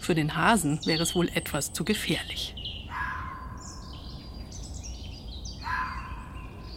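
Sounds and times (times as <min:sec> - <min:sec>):
speech: 0:00.0 - 0:02.6
red fox calling at its den in a forest in the Oberpfalz: 0:02.8 - 0:04.0, 0:05.6 - 0:06.7.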